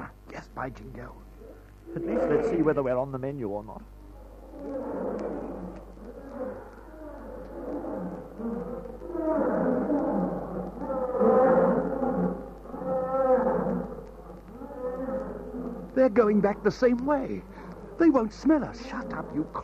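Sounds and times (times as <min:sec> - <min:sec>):
steady low hum: 0:00.0 - 0:19.6
speech: 0:00.6 - 0:04.0, 0:04.6 - 0:05.4, 0:08.4 - 0:10.1, 0:16.0 - 0:19.6
several lions roaring after drinking at a river: 0:01.4 - 0:02.8, 0:04.0 - 0:19.6.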